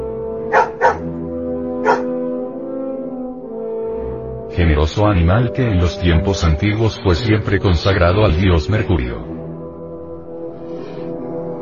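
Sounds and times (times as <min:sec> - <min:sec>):
sustained musical drone: 0:00.0 - 0:11.6
dog barking: 0:00.5 - 0:01.1, 0:01.8 - 0:02.2
speech: 0:04.6 - 0:09.4.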